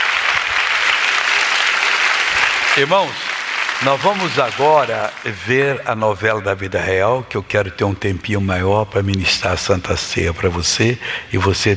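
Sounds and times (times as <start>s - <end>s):
congregation at a church service applauding: 0.0s - 6.0s
speech: 2.8s - 11.7s.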